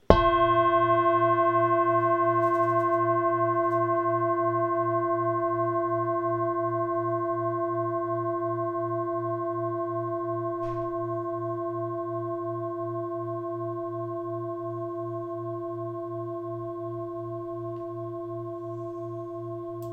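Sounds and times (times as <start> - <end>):
26 cm Tree of life singing bowl ringing: 0.1 - 19.9.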